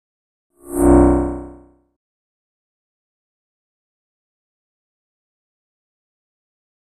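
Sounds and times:
high frequency electric pulse: 0.6 - 1.7.

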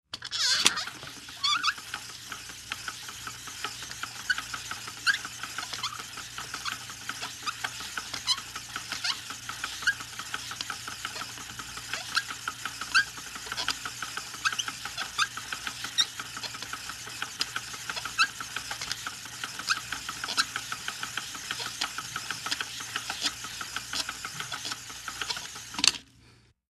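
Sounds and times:
small machine running: 0.1 - 26.6.

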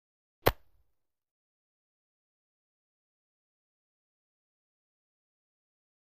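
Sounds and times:
golf club hitting ball: 0.4 - 0.7.

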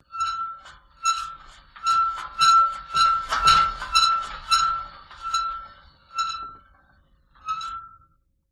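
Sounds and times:
squeaky wheel: 0.0 - 8.2.

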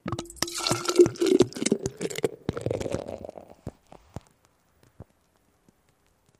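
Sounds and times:
beer pouring from a bottle into a pitcher: 0.0 - 3.5.

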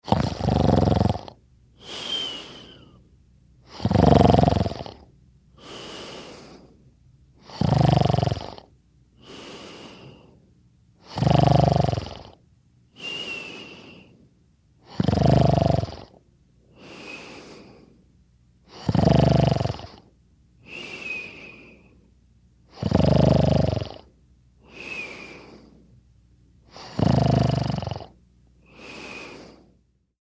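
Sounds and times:
woman snoring: 0.0 - 3.0, 3.7 - 6.7, 7.4 - 10.3, 11.0 - 12.4, 14.8 - 16.2, 16.8 - 17.8, 18.7 - 21.8, 22.7 - 25.7, 26.7 - 29.7.

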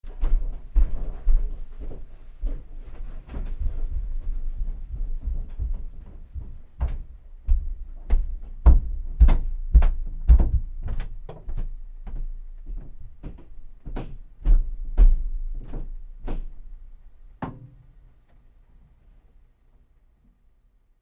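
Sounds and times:
footsteps up stairs: 0.0 - 16.8
woman walking in distant tile hallway: 0.0 - 19.9.

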